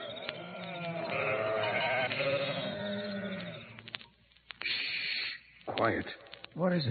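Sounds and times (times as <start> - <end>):
sheep of a flock bleating on the hills near Bethlehem at night: 0.3 - 3.7
speech: 5.8 - 6.8.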